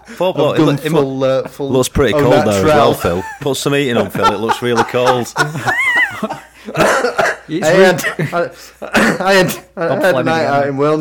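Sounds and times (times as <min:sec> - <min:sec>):
laughter: 0:00.0 - 0:10.5
speech: 0:00.1 - 0:10.9
person coughing harshly: 0:06.8 - 0:08.3, 0:08.9 - 0:09.3.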